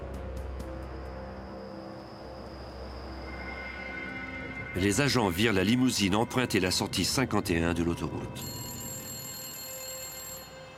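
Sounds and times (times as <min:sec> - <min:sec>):
speech: 0:04.8 - 0:08.6
telephone bell ringing: 0:08.4 - 0:10.7.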